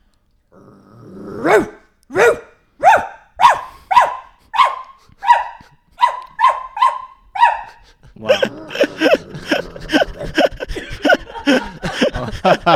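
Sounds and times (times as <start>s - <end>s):
woman imitating a dog barking: 1.4s - 9.1s
laughter: 7.7s - 12.7s
speech: 12.4s - 12.7s.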